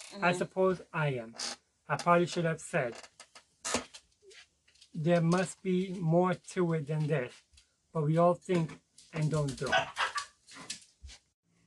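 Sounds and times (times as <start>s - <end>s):
speech: 0.1s - 3.1s, 5.0s - 10.0s
dog giving a low bark: 9.7s - 10.2s.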